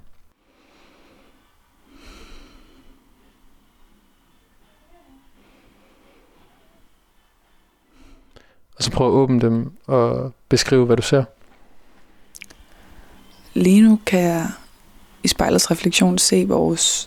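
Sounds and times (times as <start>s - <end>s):
person taking slow deep breaths in an entrance hall: 0.3s - 8.8s, 11.5s - 13.5s
speech: 8.8s - 11.4s, 15.4s - 17.0s.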